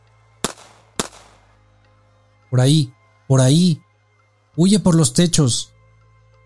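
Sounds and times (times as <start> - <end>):
gunshots: 0.4 - 1.5
speech: 2.5 - 3.8, 4.6 - 5.7.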